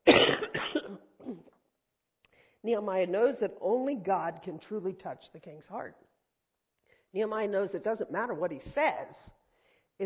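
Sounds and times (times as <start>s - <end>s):
person coughing: 0.0s - 1.6s
speech: 2.6s - 6.1s, 7.1s - 9.4s.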